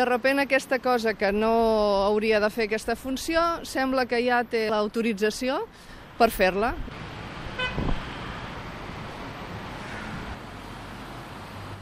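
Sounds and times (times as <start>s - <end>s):
speech: 0.0s - 7.1s
heavy four- and five-axle trucks of 25 to 30 tonnes passing on a road in Olot: 5.7s - 11.8s
truck horn toot: 7.6s - 7.9s.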